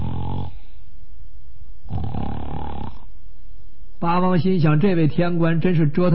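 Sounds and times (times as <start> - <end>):
male storyteller imitating loud snoring: 0.0 - 0.6, 1.9 - 3.1
speech: 4.0 - 6.1.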